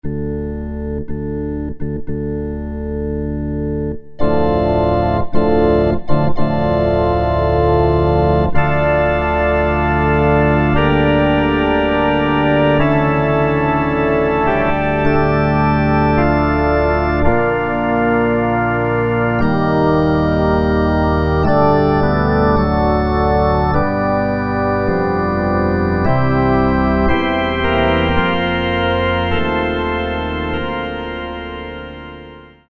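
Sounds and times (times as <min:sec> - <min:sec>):
synthesizer mega pipes organ patch: 0:00.0 - 0:32.6.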